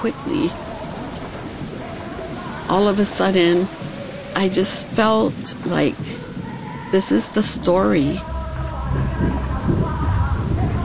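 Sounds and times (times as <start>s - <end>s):
speech: 0.0s - 0.7s, 2.7s - 6.2s, 6.9s - 8.3s
heavy rain: 0.0s - 10.8s
deep low rumble: 7.6s - 10.8s.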